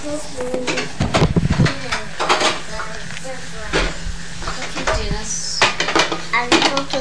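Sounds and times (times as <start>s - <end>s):
pans and metal utensils clattering while cooking French fries: 0.6s - 2.9s, 3.7s - 6.9s.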